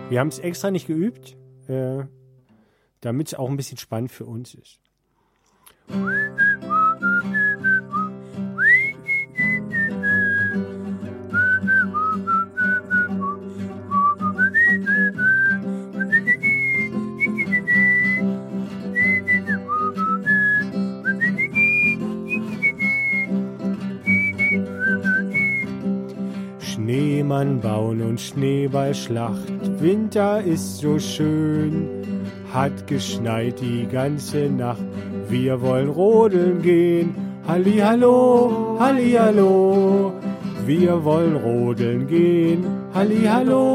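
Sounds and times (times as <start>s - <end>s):
speech: 0.1s - 2.2s, 3.0s - 4.9s, 5.9s - 6.6s, 27.3s - 43.7s
person whistling a bright bouncing song melody: 5.9s - 23.4s, 24.0s - 25.9s.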